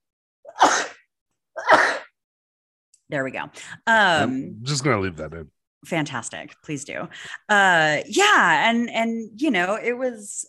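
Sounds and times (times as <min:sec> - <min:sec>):
person sneezing: 0:00.5 - 0:02.2
speech: 0:03.1 - 0:10.4.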